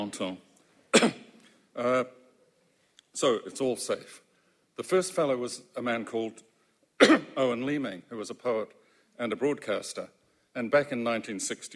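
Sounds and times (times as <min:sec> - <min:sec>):
speech: 0:00.0 - 0:01.2, 0:01.8 - 0:02.2, 0:03.2 - 0:04.2, 0:04.8 - 0:11.7
person clearing throat: 0:00.9 - 0:01.4, 0:07.0 - 0:07.4
person coughing: 0:00.9 - 0:01.4, 0:07.0 - 0:07.4.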